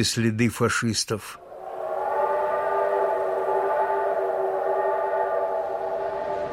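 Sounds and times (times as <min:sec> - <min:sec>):
speech: 0:00.0 - 0:01.4
low rumble of a train arriving at a station: 0:01.4 - 0:06.5
train horn blast: 0:01.4 - 0:06.5.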